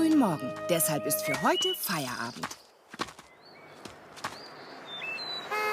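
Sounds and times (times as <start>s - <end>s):
speech: 0.2s - 2.6s
bird chirps: 1.2s - 5.6s.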